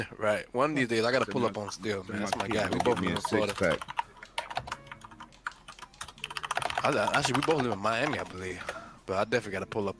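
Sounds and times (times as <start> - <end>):
speech: 0.0 - 4.0, 6.8 - 9.9
typing on a computer keyboard: 1.5 - 8.8.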